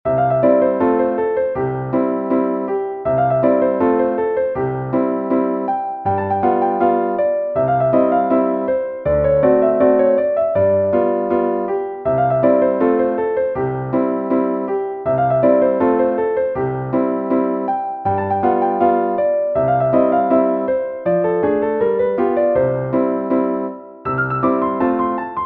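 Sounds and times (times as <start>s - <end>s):
polka on piano: 0.0s - 25.4s.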